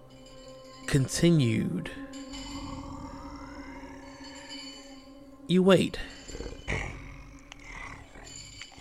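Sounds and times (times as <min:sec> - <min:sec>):
speech: 0:00.9 - 0:02.1, 0:05.5 - 0:06.5
bear-sized wolf-like lizard creatures growling and grunting while eating: 0:02.4 - 0:05.2, 0:06.1 - 0:08.7.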